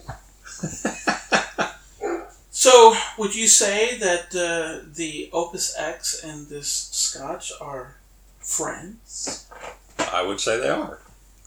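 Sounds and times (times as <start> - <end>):
laughter: 0.5 - 5.1
speech: 0.6 - 0.9, 2.6 - 11.1
dogs barking excitedly: 1.0 - 2.4.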